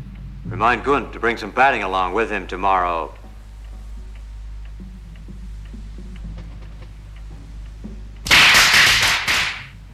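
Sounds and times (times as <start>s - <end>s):
speech: 0.4s - 3.2s
firecrackers popping: 8.3s - 9.7s.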